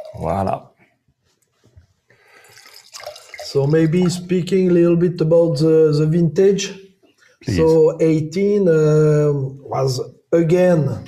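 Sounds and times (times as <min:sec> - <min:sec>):
speech: 0:00.1 - 0:00.7, 0:03.5 - 0:11.0
2018 barrel fermented and barrel aged wine poured into a glass: 0:02.3 - 0:04.8.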